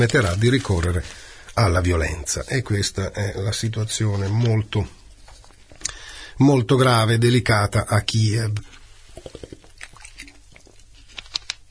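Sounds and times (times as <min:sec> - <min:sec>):
speech: 0:00.0 - 0:05.0, 0:06.4 - 0:09.5
person sipping water: 0:08.6 - 0:11.1
swallowing water: 0:09.1 - 0:11.0.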